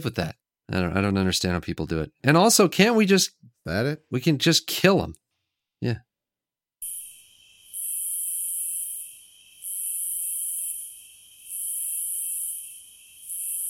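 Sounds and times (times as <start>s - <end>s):
speech: 0.0s - 5.2s, 5.8s - 6.1s
crickets chirping: 6.8s - 13.6s.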